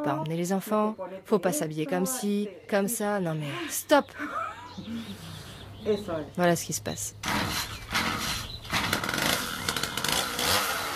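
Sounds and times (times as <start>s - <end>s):
speech: 0.0s - 7.6s
chainsaw running and revving: 7.2s - 10.9s.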